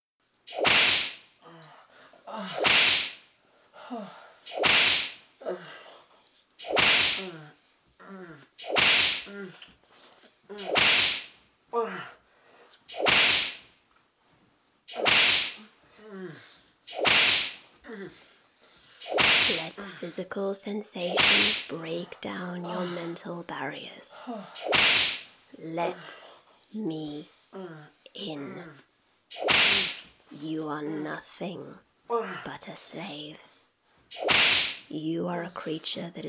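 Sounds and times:
sharp whip lashes cracking with swishing rush: 0:00.4 - 0:01.3, 0:02.4 - 0:03.2, 0:04.4 - 0:05.2, 0:06.6 - 0:07.4, 0:08.6 - 0:09.3, 0:10.5 - 0:11.4, 0:12.9 - 0:13.7, 0:14.9 - 0:15.7, 0:16.9 - 0:17.6, 0:19.0 - 0:19.8, 0:21.0 - 0:21.7, 0:24.6 - 0:25.3, 0:29.3 - 0:30.2, 0:34.1 - 0:34.9
speech: 0:00.5 - 0:01.0, 0:02.3 - 0:03.0, 0:03.9 - 0:04.7, 0:20.0 - 0:33.5, 0:34.1 - 0:36.2.

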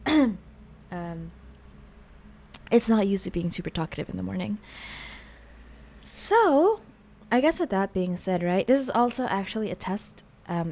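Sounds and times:
person clearing throat: 0:00.0 - 0:00.4
speech: 0:02.7 - 0:05.1, 0:06.0 - 0:10.7.

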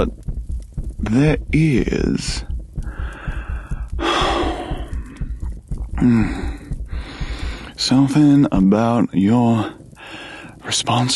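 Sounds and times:
speech: 0:00.0 - 0:00.3, 0:01.0 - 0:02.5, 0:06.0 - 0:06.5, 0:07.8 - 0:09.8, 0:10.7 - 0:11.1
breathing heard through a binaural stethoscope: 0:02.9 - 0:04.8, 0:06.2 - 0:07.8, 0:10.0 - 0:10.6.

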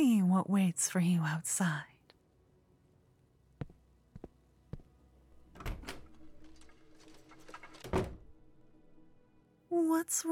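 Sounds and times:
speech: 0:00.0 - 0:01.9, 0:09.7 - 0:10.3
door swinging open with a scrape and shutting with a thud: 0:05.5 - 0:08.3.

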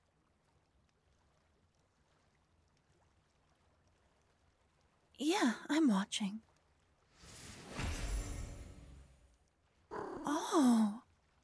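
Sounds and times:
speech: 0:05.2 - 0:06.5
cat meowing: 0:09.9 - 0:10.4
cat purring in someone's lap: 0:09.9 - 0:10.5.

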